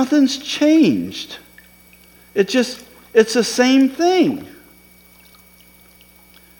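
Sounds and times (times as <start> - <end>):
speech: 0.0 - 1.4, 2.4 - 4.6
low hum: 0.0 - 6.5
water being poured into a cup: 1.4 - 6.5.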